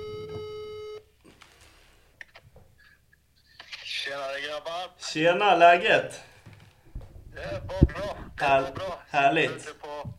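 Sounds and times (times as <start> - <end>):
telephone ringback tone: 0.0 - 1.0
speech: 4.1 - 6.3, 7.4 - 9.8.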